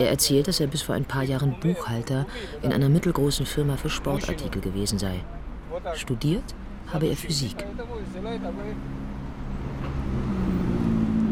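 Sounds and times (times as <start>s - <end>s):
speech: 0.0s - 9.0s
city traffic sounds: 0.0s - 11.3s
road noise inside a taxi: 0.0s - 11.3s
taxi engine rumble in city traffic: 2.2s - 11.3s.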